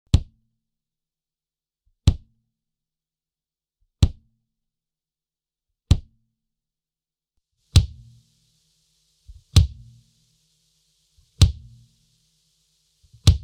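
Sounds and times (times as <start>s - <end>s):
slightly artificial metal kick drum: 2.1s - 2.3s, 4.0s - 4.3s, 5.9s - 6.2s, 7.7s - 8.2s, 9.3s - 10.0s, 11.4s - 11.8s, 13.2s - 13.4s.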